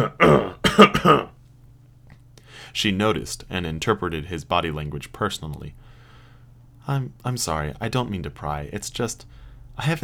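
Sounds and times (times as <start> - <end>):
speech: 0.0 - 1.3, 2.7 - 5.9, 6.9 - 10.0
man coughing and clearing his throat: 0.0 - 1.4.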